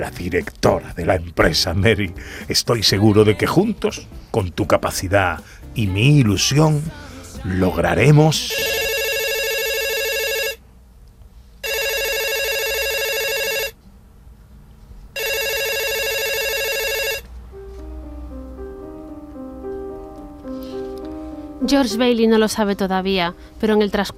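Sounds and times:
speech: 0.0s - 8.7s, 21.7s - 24.1s
soft music: 0.0s - 9.2s, 16.0s - 24.1s
telephone ringing with a buzzing electronic bell: 8.5s - 10.6s, 11.6s - 13.8s, 15.2s - 17.3s.

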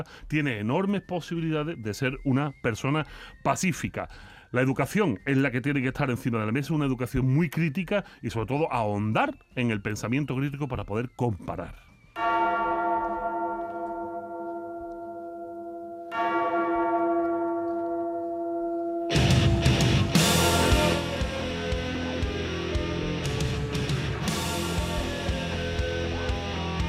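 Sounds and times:
speech: 0.0s - 12.3s
deep bell tolling: 12.2s - 23.0s
loud distorted rock band playing: 19.1s - 26.8s.

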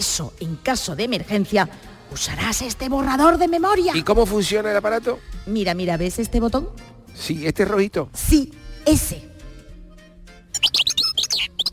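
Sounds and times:
speech: 0.0s - 9.3s
bird chirping: 10.5s - 11.7s.

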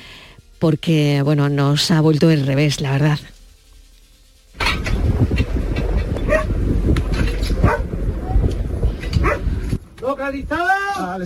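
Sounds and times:
speech: 0.6s - 3.4s, 10.1s - 11.2s
constant heavy rumbling roar: 4.8s - 9.8s
rescue dog barking: 6.3s - 6.5s, 7.6s - 7.9s, 9.2s - 9.5s.

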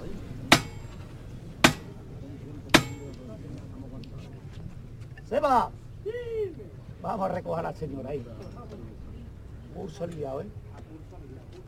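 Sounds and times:
hammer strikes: 0.5s - 2.0s, 2.7s - 3.2s
speech: 5.3s - 6.2s, 7.0s - 8.8s, 9.8s - 10.6s.

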